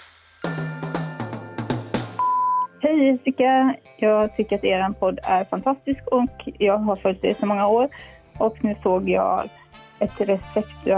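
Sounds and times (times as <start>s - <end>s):
short tones on a telephone answering machine: 2.2s - 2.8s
telephone answering machine electronic beep: 2.2s - 2.8s
speech: 2.9s - 10.9s.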